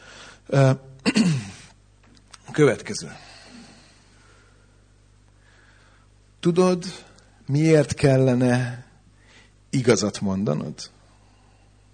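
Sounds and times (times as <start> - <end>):
speech: 0.5 - 1.4, 2.6 - 3.3, 6.4 - 8.9, 9.7 - 11.0
person sneezing: 1.1 - 1.8.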